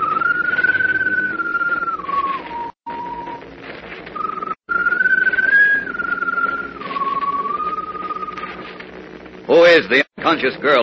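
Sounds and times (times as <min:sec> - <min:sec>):
mournful whistle of a bird perched on top of a mast: 0:00.0 - 0:03.4, 0:04.2 - 0:08.6
speech: 0:09.8 - 0:10.8.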